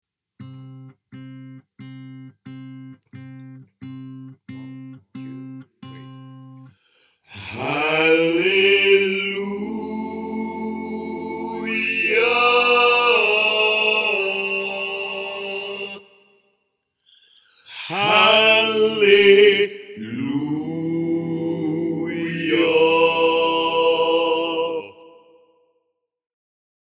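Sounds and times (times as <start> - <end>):
soprano choir part singing a gospel chorale: 7.4 - 16.1, 17.8 - 25.2.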